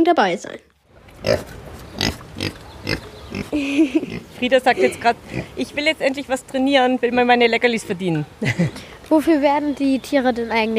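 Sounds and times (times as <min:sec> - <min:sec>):
speech: 0:00.0 - 0:01.7, 0:02.4 - 0:10.7
Kunekune pig squealing: 0:01.1 - 0:04.4
Kunekune pig grunting during an animal training session at a zoo: 0:01.1 - 0:05.6
laughter: 0:03.5 - 0:05.2, 0:08.4 - 0:08.9.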